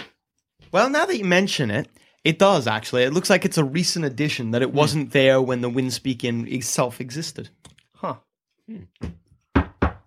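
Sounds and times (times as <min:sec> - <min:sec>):
speech: 0:00.7 - 0:09.2
solid knocks on a wooden door: 0:09.0 - 0:10.0.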